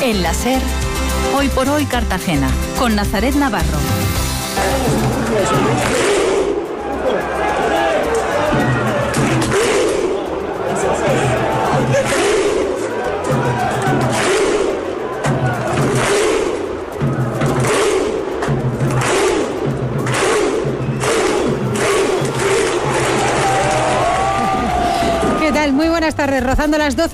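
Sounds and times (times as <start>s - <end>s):
speech: 0.1s - 6.0s, 25.7s - 27.1s
football stadium crowd roaring during a match: 4.5s - 26.1s.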